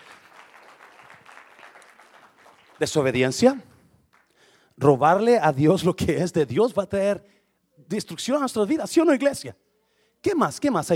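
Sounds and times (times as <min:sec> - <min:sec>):
large crowd applauding in a reverberant hall: 0:00.0 - 0:03.3
speech: 0:02.8 - 0:03.7, 0:04.8 - 0:09.6, 0:10.2 - 0:10.9.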